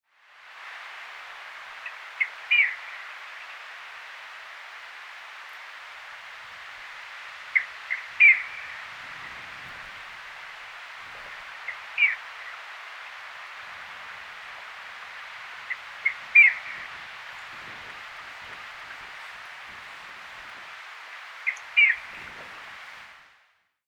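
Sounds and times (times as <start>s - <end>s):
Solitary Snipe Gallinago solitaria calling in Ladakh: 1.8s - 3.0s, 7.5s - 8.8s, 11.2s - 12.6s, 15.7s - 16.8s, 21.4s - 22.2s.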